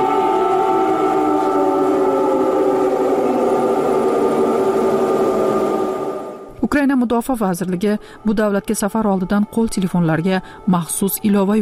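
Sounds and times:
air raid warning siren in Ukraine: 0:00.0 - 0:06.6
speech: 0:06.8 - 0:11.6.

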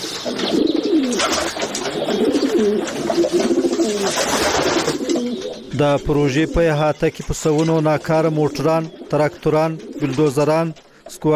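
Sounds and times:
green pigeons cooing inside derelict looted workshop buildings: 0:00.0 - 0:11.3
speech: 0:05.8 - 0:11.3.

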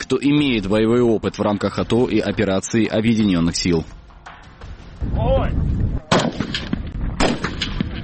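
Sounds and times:
speech: 0:00.1 - 0:04.0, 0:05.0 - 0:05.8
assault rifle and pistol shots at a military training range: 0:06.1 - 0:08.0.

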